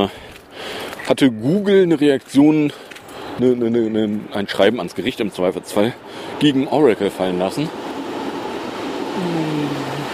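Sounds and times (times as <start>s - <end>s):
speech: 0.0s - 0.2s, 1.1s - 7.9s, 9.2s - 9.8s
two trains passing at the same time: 4.3s - 10.1s.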